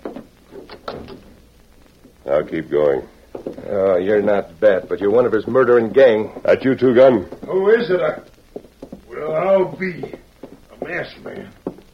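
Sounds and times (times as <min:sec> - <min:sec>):
door opening: 0:00.5 - 0:01.4
speech: 0:02.3 - 0:08.3, 0:09.6 - 0:10.2.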